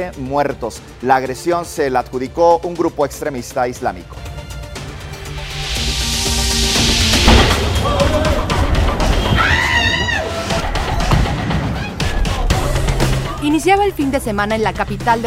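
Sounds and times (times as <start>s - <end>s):
speech: 0.0s - 4.4s, 13.6s - 15.2s
heavy booming explosions: 5.4s - 9.3s
people shouting: 7.6s - 13.4s.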